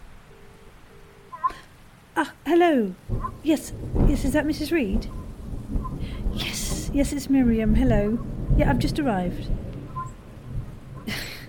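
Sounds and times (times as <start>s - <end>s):
steady rain outside: 0.0s - 11.4s
speech: 2.2s - 5.2s, 6.4s - 9.6s
wind roaring outside: 2.9s - 11.4s.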